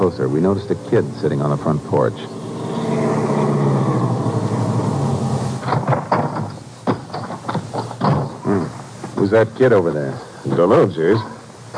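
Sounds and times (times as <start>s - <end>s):
speech: 0.0s - 2.4s, 9.3s - 11.4s
car engine rumbling as it drives in to a ranch: 0.0s - 6.3s
sharp clunks and rattles: 5.6s - 8.4s.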